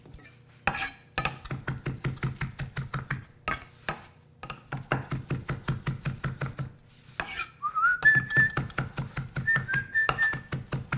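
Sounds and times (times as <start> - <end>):
knife chopping herbs on a cutting board: 0.7 - 7.4, 8.0 - 10.9
person whistling: 7.6 - 8.7, 9.4 - 10.5.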